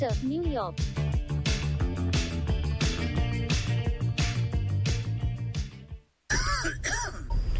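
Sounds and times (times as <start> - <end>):
speech: 0.0 - 1.0
rhythmic music: 0.0 - 6.0
rough throaty cough: 6.3 - 7.4.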